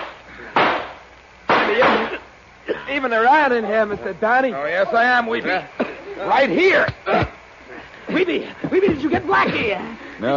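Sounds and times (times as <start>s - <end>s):
gunshots in a radio drama: 0.0s - 2.1s
speech: 2.9s - 7.3s, 8.2s - 10.3s.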